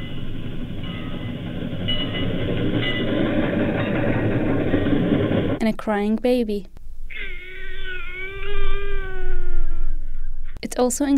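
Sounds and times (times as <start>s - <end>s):
train running on rails: 0.0s - 6.0s
speech: 5.6s - 6.8s, 10.7s - 11.1s.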